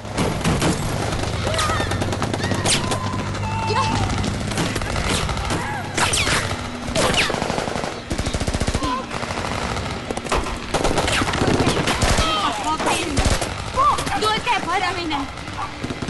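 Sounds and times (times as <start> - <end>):
rapid bursts of gunfire: 0.0 - 16.0
people shouting: 1.3 - 7.3, 12.0 - 13.1.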